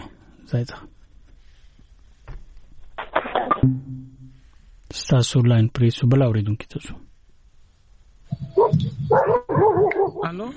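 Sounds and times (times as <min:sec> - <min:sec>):
speech: 0:00.5 - 0:01.0, 0:03.6 - 0:04.0, 0:05.0 - 0:07.1, 0:08.3 - 0:10.5
dog barking and yipping: 0:08.4 - 0:10.3.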